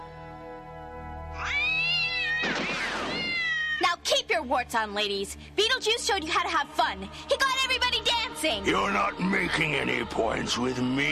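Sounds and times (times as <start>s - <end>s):
cat meowing: 1.4s - 4.0s
speech: 4.4s - 11.1s.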